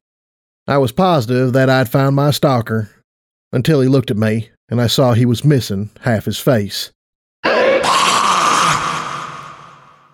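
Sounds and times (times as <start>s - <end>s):
speech: 0.7s - 7.6s
ghoul groaning and screaming as it charges: 7.4s - 10.1s.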